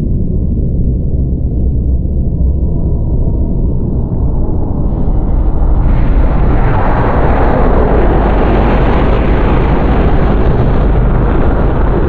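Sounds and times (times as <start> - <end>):
flyer vehicle: 0.1 - 12.0.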